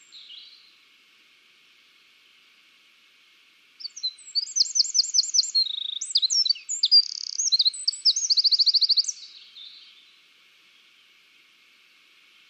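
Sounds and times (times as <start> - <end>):
Eurasian wren Troglodytes troglodytes song: 0.0 - 0.8, 3.8 - 11.2.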